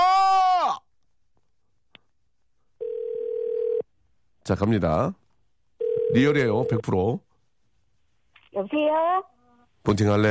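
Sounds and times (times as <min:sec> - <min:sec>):
phone ringback tone while a call is placed: 0:02.8 - 0:03.8, 0:05.8 - 0:06.9
speech: 0:04.5 - 0:05.2, 0:06.1 - 0:07.3, 0:08.6 - 0:10.2.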